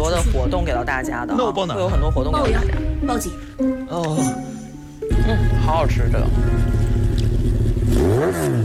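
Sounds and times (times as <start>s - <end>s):
speech: 0.2s - 4.6s, 5.2s - 6.9s, 7.9s - 8.6s
vehicle engine drone while being driven fast: 5.1s - 8.6s.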